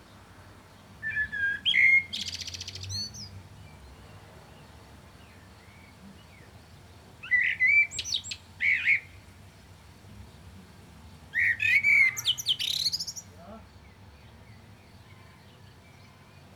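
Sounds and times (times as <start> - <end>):
common blackbird Turdus merula singing: 1.0 - 4.0, 7.2 - 9.2, 11.3 - 16.2.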